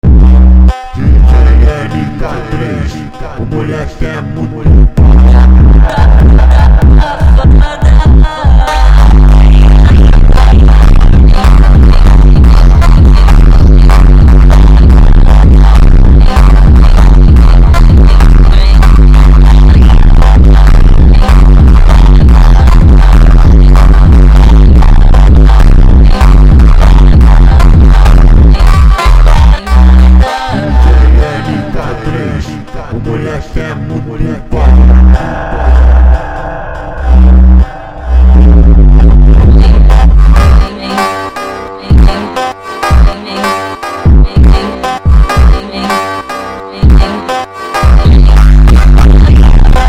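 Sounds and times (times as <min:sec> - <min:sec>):
slowed montagem music with superbass and reverb: 0:00.0 - 0:49.8.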